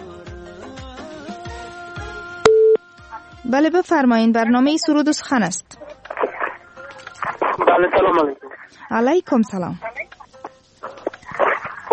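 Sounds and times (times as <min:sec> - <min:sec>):
telephone busy signal after a failed call: 0:02.5 - 0:02.8
speech: 0:03.5 - 0:05.7, 0:07.8 - 0:09.9.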